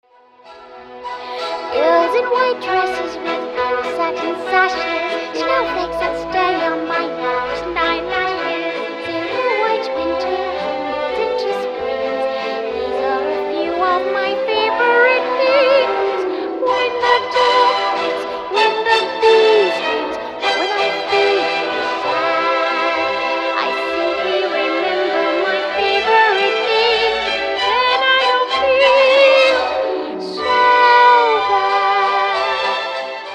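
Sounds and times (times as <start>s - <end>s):
person singing: 1.2s - 33.0s.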